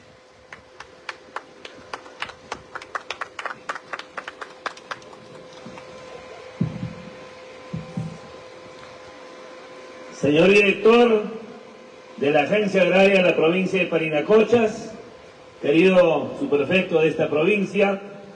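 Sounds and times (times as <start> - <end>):
steady electrical hum from a sound system: 0.0 - 18.3
audience applause at a public event in Parinacochas province: 0.5 - 6.6
speech: 10.2 - 11.4, 12.2 - 14.9, 15.6 - 18.1.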